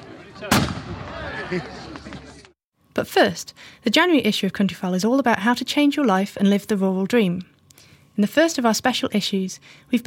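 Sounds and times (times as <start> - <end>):
large gun fired at a tree to drive off evil spirits: 0.4 - 1.3
speech: 0.4 - 1.9, 3.0 - 7.5, 8.2 - 10.0.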